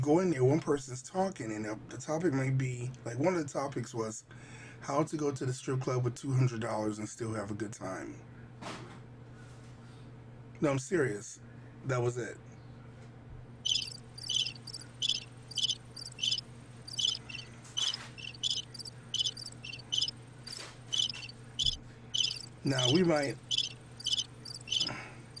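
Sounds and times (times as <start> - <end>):
speech: 0.0 - 8.9, 10.6 - 12.5, 22.6 - 23.5
crickets chirping in a looping night-insect sound effect: 13.7 - 25.3.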